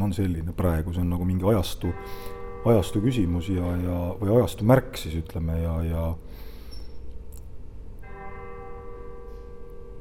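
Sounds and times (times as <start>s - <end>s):
speech: 0.1s - 6.5s
church bells ringing faintly: 1.4s - 5.9s, 8.0s - 9.9s.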